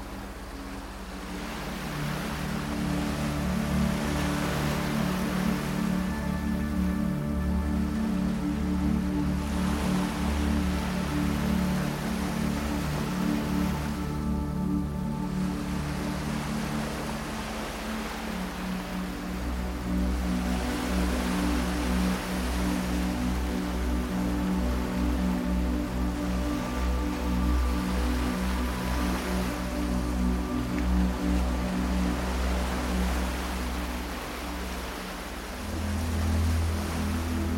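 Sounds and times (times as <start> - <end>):
low sustained binaural beat tones: 0.0 - 37.5
ocean waves washing in a dense hiss: 0.0 - 37.5.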